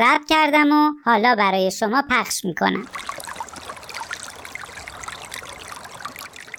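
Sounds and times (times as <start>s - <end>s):
speech: 0.0s - 3.2s
flowing river stream water babbling and trickling: 2.8s - 6.5s.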